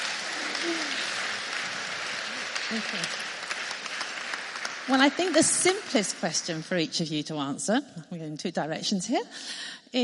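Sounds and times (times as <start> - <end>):
audience applause at a church gathering: 0.0 - 6.7
speech: 2.7 - 3.2, 4.9 - 10.0.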